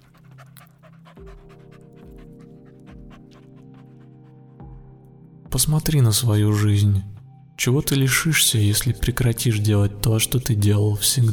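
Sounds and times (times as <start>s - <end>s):
dog panting and sniffing at a person's leg: 0.0s - 4.8s
speech: 5.6s - 11.3s.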